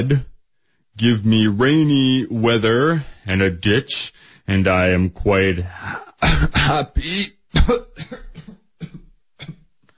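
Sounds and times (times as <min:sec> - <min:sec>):
speech: 0:00.0 - 0:00.3, 0:01.0 - 0:08.5
person coughing: 0:06.2 - 0:09.7.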